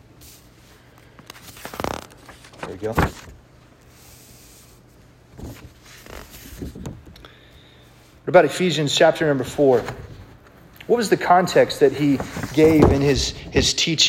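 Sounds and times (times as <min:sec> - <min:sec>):
paper pages rustling and flipping: 0:00.9 - 0:07.2, 0:09.4 - 0:14.0
speech: 0:02.7 - 0:03.4, 0:08.3 - 0:10.0, 0:10.9 - 0:14.0.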